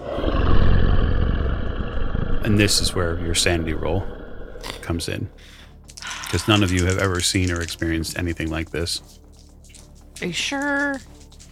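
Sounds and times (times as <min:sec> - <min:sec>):
monstrous creature roar: 0:00.0 - 0:05.4
speech: 0:02.4 - 0:05.6, 0:06.3 - 0:09.2, 0:10.2 - 0:11.1.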